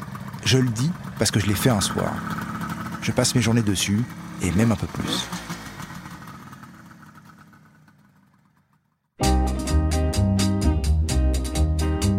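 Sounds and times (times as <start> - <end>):
Kawasaki 500 motorcycle engine rumbling: 0.0 - 12.1
speech: 0.5 - 5.6
loud rhythmic music: 9.2 - 12.1.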